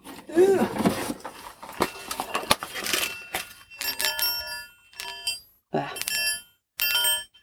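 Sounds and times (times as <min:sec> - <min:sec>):
rattling and handling noise of Qigong balls: 0:00.0 - 0:07.4
metal Qigong balls chiming when shaken: 0:01.6 - 0:07.4.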